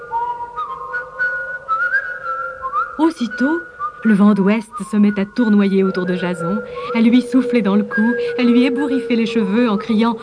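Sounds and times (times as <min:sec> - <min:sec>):
person whistling a little tune: 0:00.0 - 0:07.0
speech: 0:03.0 - 0:10.2.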